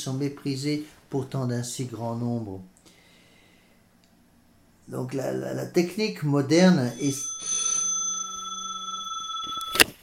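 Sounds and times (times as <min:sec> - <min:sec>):
speech: 0:00.0 - 0:02.7, 0:04.9 - 0:07.6
telephone bell ringing: 0:06.9 - 0:10.0.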